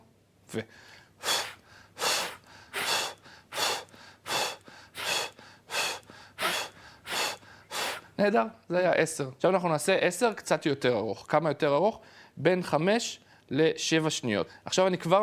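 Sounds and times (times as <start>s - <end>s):
speech: 0.5s - 1.4s, 8.2s - 15.2s
short forceful exhalations during pelvic floor exercise: 0.7s - 8.2s.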